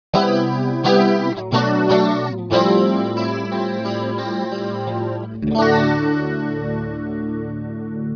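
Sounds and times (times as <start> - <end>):
lush multi chorus effect: 0.2 - 8.1.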